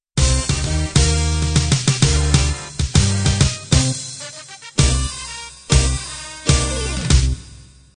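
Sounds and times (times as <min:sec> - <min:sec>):
swing band ending: 0:00.2 - 0:07.4.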